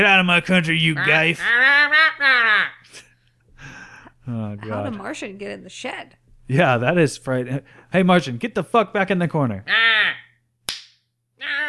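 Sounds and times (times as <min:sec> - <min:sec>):
speech: 0:00.0 - 0:03.0, 0:04.3 - 0:10.2
single sharp crisp slap: 0:10.7 - 0:11.0.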